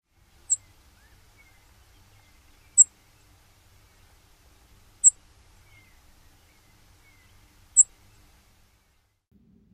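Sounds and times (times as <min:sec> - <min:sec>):
faint low rumble: 0:00.1 - 0:09.7
Brewer's Sparrow sip call notes: 0:00.4 - 0:03.0, 0:05.0 - 0:08.3.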